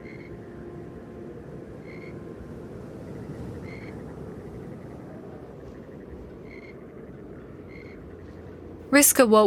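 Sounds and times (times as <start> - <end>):
frogs chirping among reeds: 0.0 - 8.8
steady low rumbling background: 0.0 - 9.4
speech: 8.9 - 9.4.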